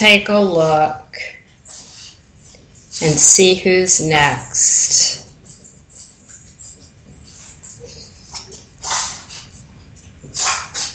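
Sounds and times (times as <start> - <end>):
speech: 0.0 - 1.4, 3.0 - 5.2
French bulldog puppies sniffing and snorting: 1.5 - 3.3, 5.2 - 10.9.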